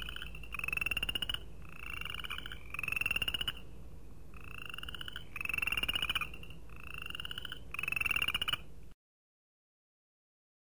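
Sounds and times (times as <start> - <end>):
chorus frogs trilling in rapid clicks: 0.0 - 3.7, 4.3 - 8.7.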